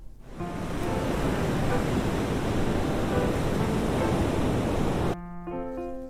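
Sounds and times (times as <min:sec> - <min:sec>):
ocean surf roaring: 0:00.2 - 0:05.2
sustained musical tone: 0:00.3 - 0:05.2.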